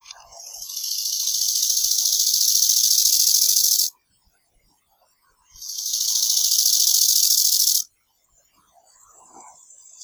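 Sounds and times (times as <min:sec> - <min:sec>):
bow-winged grasshopper alternating song: 0:00.6 - 0:03.9, 0:05.6 - 0:07.8.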